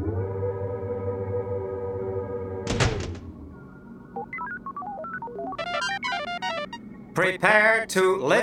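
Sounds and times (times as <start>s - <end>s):
steady mechanical hum: 0.0s - 8.4s
rocket's heavy doors slamming shut: 2.6s - 3.4s
high electronic beeps and tones: 4.2s - 6.8s
speech: 7.2s - 8.4s.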